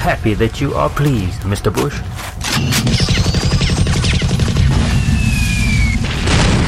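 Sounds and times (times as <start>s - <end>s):
speech: 0.0s - 3.2s
rapid gunfire from futuristic guns: 2.4s - 6.6s
dense low boom: 2.8s - 6.6s
whistling high streaks: 4.9s - 6.1s.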